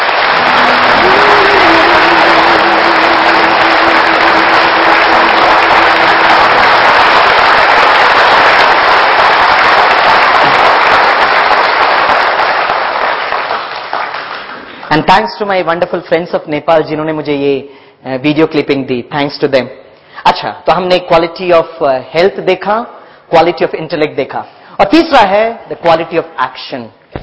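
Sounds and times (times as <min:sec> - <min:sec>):
large audience clapping loudly: 0:00.0 - 0:15.1
speech: 0:15.0 - 0:27.2.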